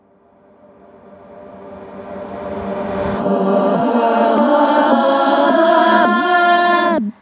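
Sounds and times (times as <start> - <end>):
riser vocal: 3.0 - 7.2.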